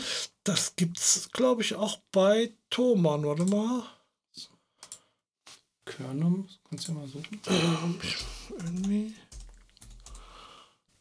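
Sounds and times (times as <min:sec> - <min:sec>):
speech: 0:00.5 - 0:04.5, 0:05.9 - 0:09.2
typing on a computer keyboard: 0:04.8 - 0:05.0, 0:08.2 - 0:10.3.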